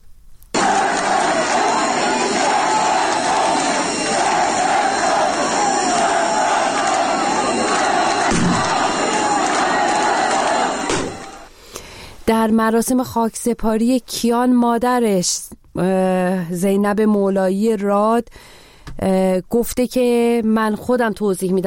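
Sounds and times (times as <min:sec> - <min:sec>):
large crowd chanting anti-government slogans at a child's funeral: 0:00.6 - 0:11.5
speech: 0:12.4 - 0:21.6.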